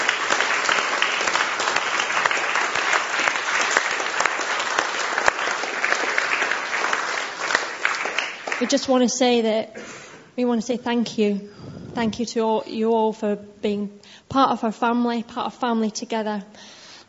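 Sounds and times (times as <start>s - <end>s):
large group applauding: 0.0s - 8.9s
speech: 8.6s - 17.0s.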